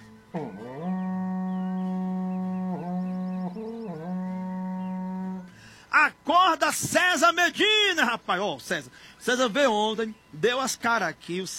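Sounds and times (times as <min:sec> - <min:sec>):
berrante cattle horn blaring with a deep buzzing tone: 0:00.0 - 0:08.0
speech: 0:00.3 - 0:00.7, 0:06.3 - 0:11.5.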